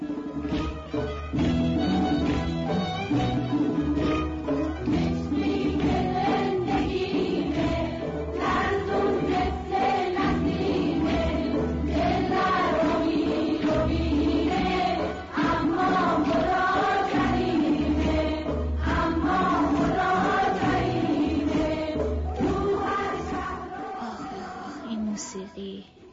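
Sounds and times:
instrumental backing from a cassette tape: 0.0 - 25.1
girls' choir singing from a cassette tape: 4.9 - 25.2.

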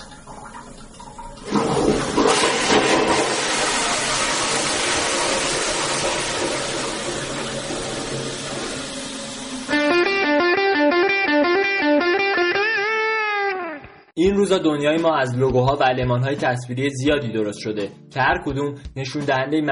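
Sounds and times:
rushing flushing water: 0.0 - 10.4
bright synthesized melody of quick stepping tones: 9.7 - 14.1
speech: 14.5 - 19.7.

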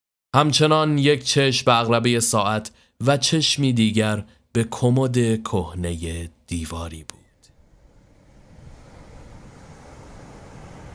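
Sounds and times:
speech: 0.4 - 7.2
sea waves washing against the shore: 7.5 - 10.9.

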